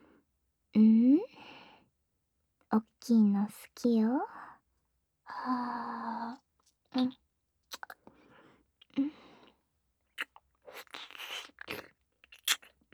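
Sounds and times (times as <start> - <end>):
speech: 2.7 - 4.4, 5.4 - 6.4, 7.0 - 7.2
chewing and eating with mouth sounds: 7.7 - 8.0, 10.2 - 12.9.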